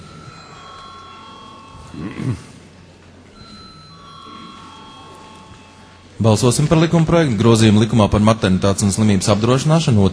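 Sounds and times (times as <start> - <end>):
electric voting call bell ringing in the Latvian parliament: 0.0 - 2.6, 3.3 - 6.7
speech: 1.9 - 2.5, 6.2 - 10.1.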